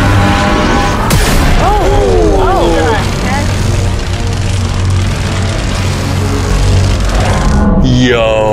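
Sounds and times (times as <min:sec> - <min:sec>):
giant laser death beams firing in a laser maze: 0:00.0 - 0:07.7.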